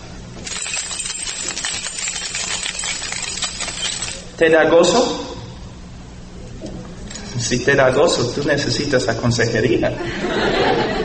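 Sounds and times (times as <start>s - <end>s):
thrown bunch of keys jingling and rattling: 0.4s - 4.4s
speech: 4.4s - 5.3s, 7.4s - 11.0s
laughter: 9.9s - 11.0s.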